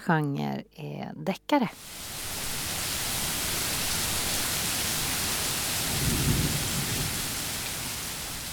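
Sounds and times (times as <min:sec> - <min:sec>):
speech: 0:00.0 - 0:02.2
steady heavy rain: 0:01.7 - 0:08.5
low rumble of thunder: 0:01.9 - 0:08.5.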